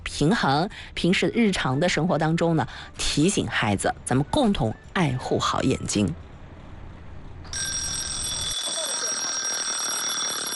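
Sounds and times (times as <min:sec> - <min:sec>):
speech: 0:00.2 - 0:06.3
timer bell ringing with a bright metallic tone: 0:07.5 - 0:10.5.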